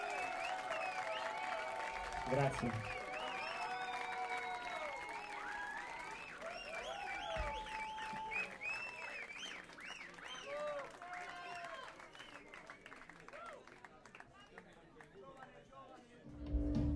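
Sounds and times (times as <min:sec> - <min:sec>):
audience whistles: 0:00.0 - 0:01.6, 0:02.3 - 0:12.9
audience cheering voices: 0:00.0 - 0:13.7
large audience clapping: 0:00.0 - 0:15.6
speech: 0:02.3 - 0:03.0.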